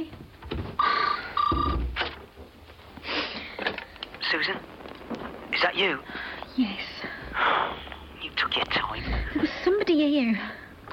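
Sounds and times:
telephone ringing with electronic double-ring trills: 0.8s - 1.8s
faint shuffling: 2.4s - 10.8s
speech: 4.4s - 4.7s, 5.7s - 6.9s, 9.9s - 10.6s.

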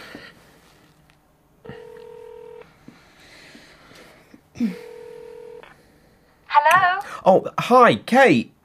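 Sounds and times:
telephone ringing with an electronic tone: 1.6s - 2.7s, 4.7s - 5.7s
speech: 4.6s - 4.9s, 7.2s - 8.5s.

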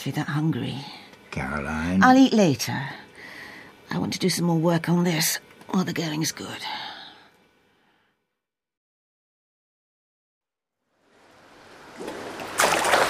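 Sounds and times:
speech: 0.0s - 3.0s, 3.9s - 6.9s
water rushing: 11.1s - 13.0s
loud water splash: 11.9s - 13.0s.

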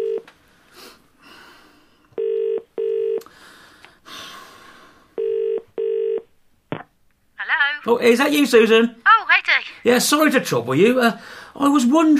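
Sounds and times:
phone number dialing clicks and tones: 0.0s - 0.3s, 2.2s - 3.2s, 5.2s - 6.2s
speech: 7.8s - 9.0s, 9.8s - 12.1s.

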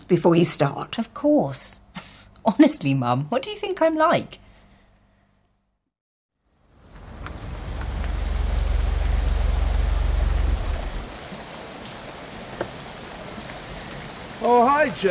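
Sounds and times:
speech: 0.1s - 1.8s, 2.4s - 4.4s, 14.4s - 15.0s
rain falling and pattering on a surface: 6.4s - 15.0s
deep low rumble: 6.7s - 11.1s.

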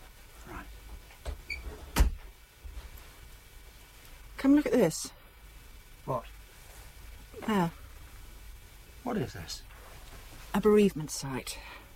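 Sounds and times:
door thudding shut: 1.3s - 2.3s
speech: 4.4s - 5.2s, 6.1s - 6.3s, 7.4s - 7.8s, 9.0s - 9.7s, 10.6s - 11.8s.

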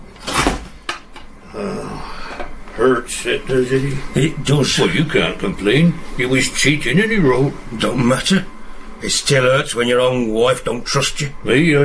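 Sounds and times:
door being shut: 0.2s - 0.8s
speech: 1.5s - 2.2s, 2.8s - 11.8s.

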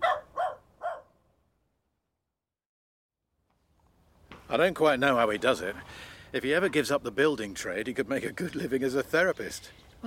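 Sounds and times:
dog barking: 0.0s - 1.2s
speech: 4.5s - 10.0s.

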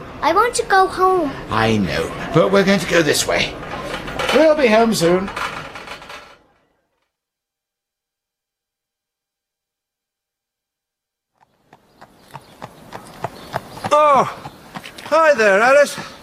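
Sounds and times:
speech: 0.2s - 5.5s
horse hooves clip-clopping on a ride: 11.4s - 16.1s.

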